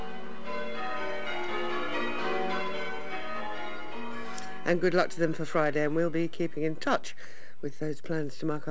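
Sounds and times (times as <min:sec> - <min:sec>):
church bells ringing a peal: 0:00.0 - 0:06.8
speech: 0:04.7 - 0:08.6.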